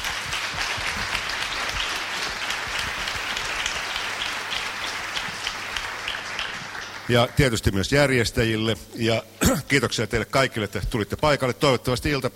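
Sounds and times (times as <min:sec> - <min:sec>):
seminar audience applauding the speakers: 0:00.0 - 0:07.6
speech: 0:07.1 - 0:12.3.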